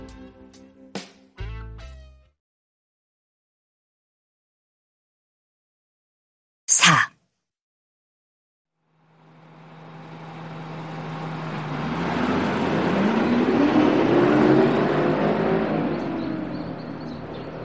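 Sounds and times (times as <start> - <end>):
speech: 6.7 - 7.1
heavy bus engine revving as the bus pulls away: 9.0 - 17.6.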